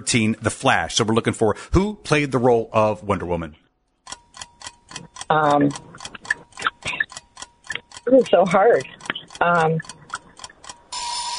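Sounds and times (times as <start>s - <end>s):
speech: 0.0s - 3.6s, 5.0s - 5.9s, 8.1s - 10.0s
soft quiz timer ticks: 4.0s - 11.0s
bright sustained quiz game buzzer: 10.9s - 11.3s.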